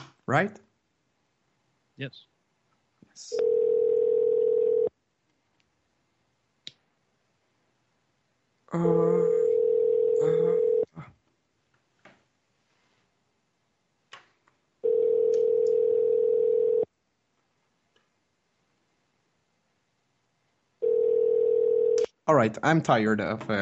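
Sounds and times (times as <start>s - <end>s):
speech: 0.3s - 0.7s, 2.0s - 2.3s, 3.2s - 3.6s, 8.7s - 9.4s, 22.3s - 23.5s
outgoing phone line ringing unanswered: 3.3s - 4.9s, 9.3s - 10.9s, 14.8s - 16.9s, 20.8s - 22.1s.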